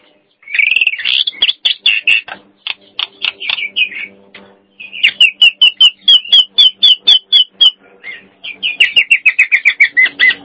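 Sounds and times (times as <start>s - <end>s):
Nias hill myna whistled song: 0.4s - 2.2s, 4.8s - 10.4s.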